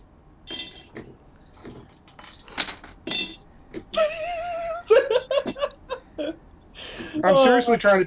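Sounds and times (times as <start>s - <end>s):
small pieces of broken glass clinking and scraping: 0.5s - 1.1s, 2.1s - 3.5s
person laughing: 3.9s - 6.4s
speech: 7.2s - 8.0s.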